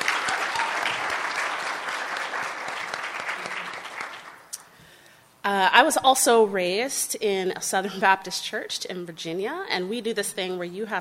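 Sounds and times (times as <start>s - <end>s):
crowd at a brewers' association workshop clapping: 0.0s - 4.5s
speech: 5.5s - 10.9s.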